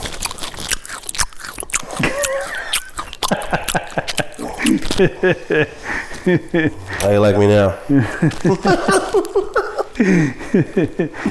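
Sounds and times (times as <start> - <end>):
crunchy chewing and biting of food: 0.0 - 10.0
laughter: 2.0 - 11.3
speech: 5.0 - 11.3.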